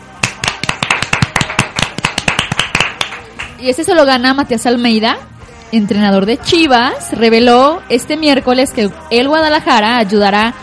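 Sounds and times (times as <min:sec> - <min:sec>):
brisk steady applause of crisp hand claps: 0:00.2 - 0:03.6
speech: 0:03.6 - 0:10.6.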